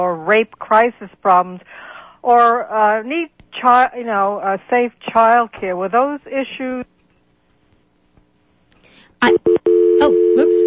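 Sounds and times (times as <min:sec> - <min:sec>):
speech: 0:00.0 - 0:07.0, 0:09.2 - 0:10.6
telephone line tones as a phone-in call drops: 0:09.2 - 0:10.6.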